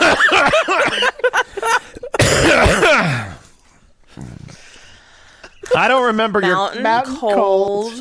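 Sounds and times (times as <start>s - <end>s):
person coughing: 0.0s - 1.2s, 2.0s - 3.6s
laughter: 0.0s - 2.2s
throat clearing: 2.2s - 4.5s
speech: 5.8s - 7.9s.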